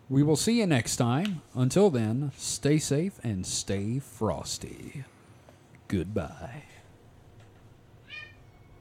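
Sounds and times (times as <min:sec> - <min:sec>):
quiet low hum: 0:00.0 - 0:08.7
speech: 0:00.1 - 0:05.2, 0:05.9 - 0:06.8
pet cat meowing: 0:08.0 - 0:08.7.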